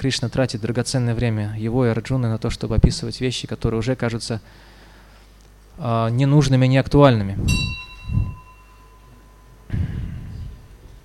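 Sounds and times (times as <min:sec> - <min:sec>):
speech: 0:00.0 - 0:04.7, 0:05.8 - 0:08.3
bell ringing: 0:07.5 - 0:09.7.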